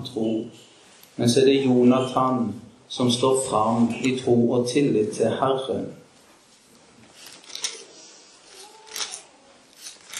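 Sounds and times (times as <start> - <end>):
speech: 0.1 - 6.0
book pages being leafed through: 7.1 - 10.1.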